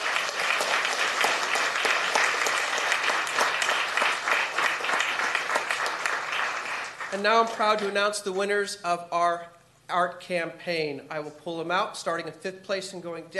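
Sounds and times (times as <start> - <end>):
crowd applauding: 0.0 - 7.9
speech: 7.1 - 13.3.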